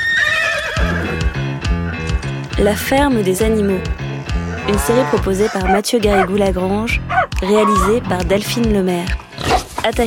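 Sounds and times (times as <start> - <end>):
farm horse whinnying: 0.0 - 2.1, 4.5 - 6.3, 7.1 - 8.0
speech: 2.6 - 4.0, 4.7 - 10.0.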